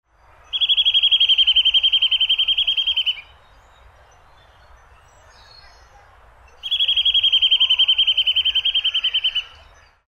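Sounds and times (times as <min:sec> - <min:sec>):
nuthatch: 0:00.5 - 0:03.3, 0:06.5 - 0:09.7.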